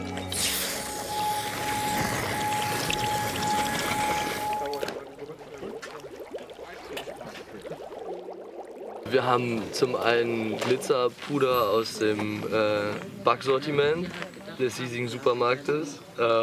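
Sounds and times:
dry-ice potion bubbling in a cauldron with compressed air: 0.4s - 12.9s
speech: 9.1s - 16.4s.

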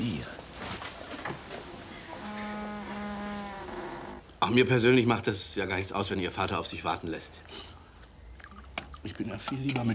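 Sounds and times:
rustling movements: 0.0s - 4.2s
fly buzzing: 2.1s - 4.2s
speech: 4.4s - 7.8s, 9.1s - 9.9s.

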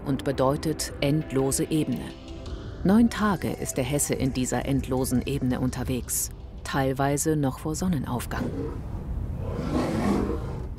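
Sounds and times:
speech: 0.1s - 9.0s
lion roaring on a vast East African plain: 8.3s - 10.7s.

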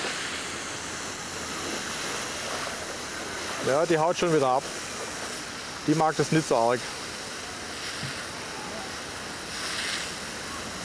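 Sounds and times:
hose spraying a jet of water at a bear: 0.0s - 10.8s
speech: 3.6s - 4.8s, 5.8s - 7.0s.

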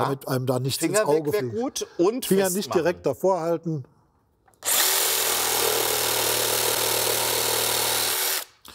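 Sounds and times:
speech: 0.0s - 3.9s
power saw cutting an old wooden decking board: 4.6s - 8.5s.

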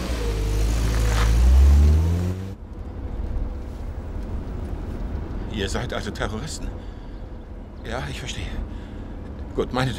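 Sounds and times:
car engine accelerating hard: 0.0s - 2.6s
speech: 5.6s - 7.0s, 7.8s - 8.8s, 9.6s - 9.9s.

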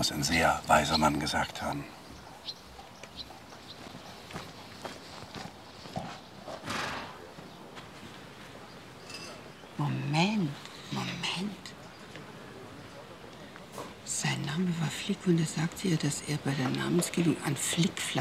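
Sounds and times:
speech: 0.0s - 2.6s, 9.8s - 11.6s, 14.6s - 18.1s
horse hooves clip-clopping at a walk: 2.1s - 8.6s
horse whinny: 6.6s - 7.2s.

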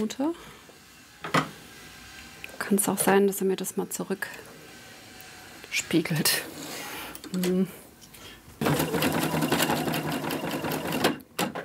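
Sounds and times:
speech: 0.0s - 0.6s, 2.6s - 4.5s, 5.7s - 6.6s, 7.3s - 7.8s
sewing machine stitching through film, running unevenly: 8.6s - 11.2s.

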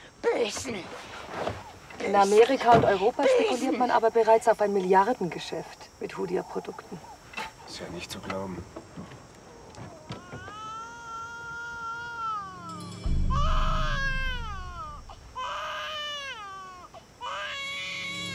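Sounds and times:
speech: 0.4s - 7.1s, 7.7s - 9.1s
baby crying: 9.9s - 18.3s
rumbling noise: 13.0s - 15.6s.

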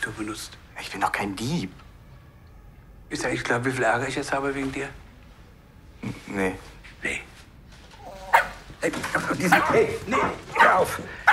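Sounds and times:
speech: 0.1s - 1.8s, 3.1s - 5.0s, 6.0s - 7.3s, 8.8s - 11.2s
dog barking in excited yips and woofs: 8.3s - 8.6s, 9.5s - 11.3s.

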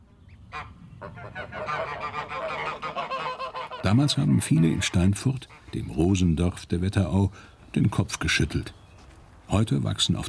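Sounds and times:
flock of geese honking and cackling on an organic rose farm in Germany: 0.5s - 6.0s
speech: 3.8s - 8.8s, 9.5s - 10.2s.

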